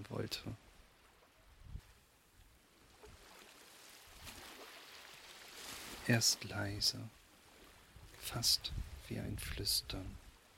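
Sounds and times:
speech: 0:00.0 - 0:00.6, 0:06.1 - 0:07.2, 0:08.2 - 0:10.2
ocean waves rushing on a sandy beach: 0:00.0 - 0:10.5.

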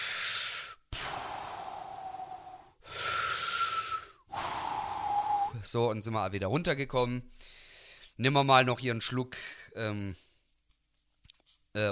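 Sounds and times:
slow deep breathing in and out: 0:00.0 - 0:05.6, 0:07.3 - 0:08.2
speech: 0:05.6 - 0:07.6, 0:08.2 - 0:10.2.

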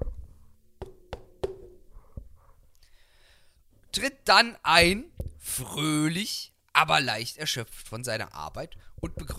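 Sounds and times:
knocking on a kitchen door: 0:00.8 - 0:01.8
speech: 0:04.0 - 0:09.3.

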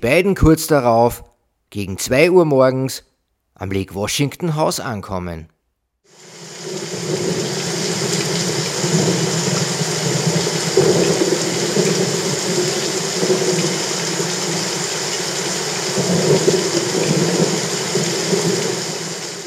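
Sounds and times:
speech: 0:00.0 - 0:05.5, 0:08.9 - 0:09.4, 0:16.0 - 0:18.6
heavy rain pouring: 0:06.1 - 0:19.4.

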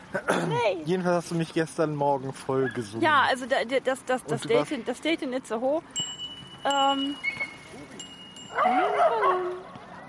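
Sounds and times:
speech: 0:00.4 - 0:07.4, 0:08.5 - 0:09.6
dogs whining and yelping: 0:07.2 - 0:07.8, 0:08.4 - 0:10.0.

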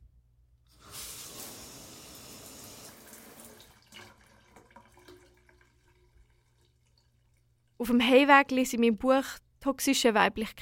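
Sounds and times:
shower water spraying: 0:00.7 - 0:03.7
uneven splashing under the shower stream: 0:02.8 - 0:07.7
speech: 0:07.8 - 0:10.6.

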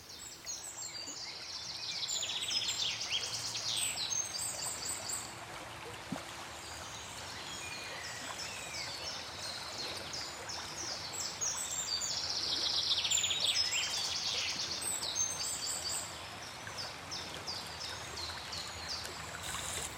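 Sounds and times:
soft continuous rush of flowing water: 0:00.0 - 0:19.9
birds chirping and twittering in morning: 0:19.4 - 0:19.9.

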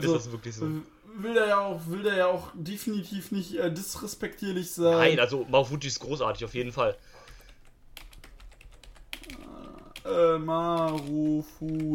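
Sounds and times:
speech: 0:00.0 - 0:07.2, 0:10.0 - 0:11.9
computer keyboard typing: 0:07.2 - 0:11.9.

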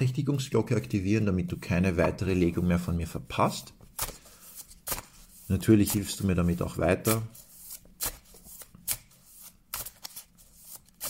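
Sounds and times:
speech: 0:00.0 - 0:04.1, 0:05.5 - 0:07.4
deck of tarot cards being shuffled by hand: 0:03.8 - 0:11.0.

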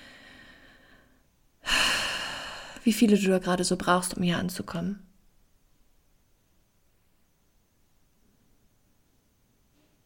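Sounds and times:
deep breathing during a guided relaxation: 0:00.0 - 0:02.8
speech: 0:02.8 - 0:05.1.

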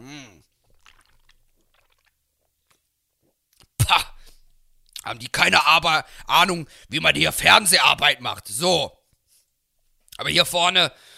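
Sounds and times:
person gulping and slurping beer from a can: 0:00.0 - 0:05.0
soft mouth sounds: 0:00.0 - 0:05.1
speech: 0:05.1 - 0:09.0, 0:10.2 - 0:11.1.

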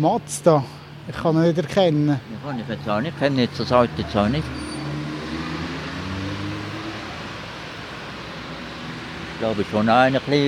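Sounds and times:
speech: 0:00.0 - 0:04.7, 0:09.4 - 0:10.4
car engine roaring as the car accelerates past: 0:02.8 - 0:09.5.

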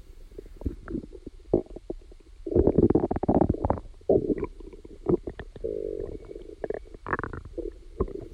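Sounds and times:
digestive sounds gurgling recorded from inside the body: 0:02.5 - 0:08.3.

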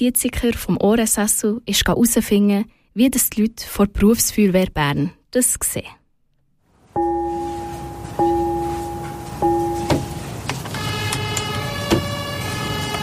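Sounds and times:
speech: 0:00.0 - 0:06.0
fire engine rumbling: 0:06.9 - 0:11.8
fire station gong strikes: 0:07.0 - 0:10.5
fire engine siren wailing: 0:07.0 - 0:13.0.

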